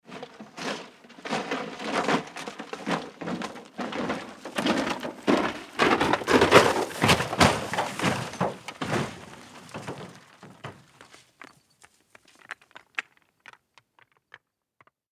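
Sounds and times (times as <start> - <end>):
car falling off cliff: 2.7 - 11.2.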